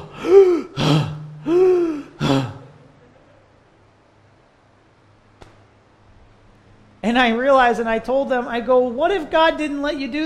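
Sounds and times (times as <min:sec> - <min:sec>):
person gasping for air after holding their breath: 0:00.0 - 0:02.8
speech: 0:07.1 - 0:10.2.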